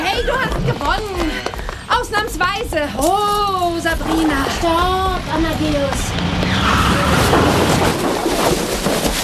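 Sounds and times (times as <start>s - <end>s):
speech: 0.2s - 1.5s, 2.1s - 6.3s
scraping debris from car crash: 2.9s - 9.2s
car crashing into a hay wagon: 4.2s - 9.2s.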